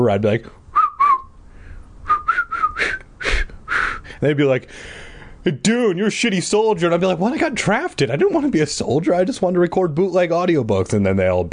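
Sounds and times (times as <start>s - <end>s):
speech: 0.0s - 0.6s, 4.2s - 11.5s
person whistling a tune: 0.8s - 1.3s, 2.1s - 4.0s.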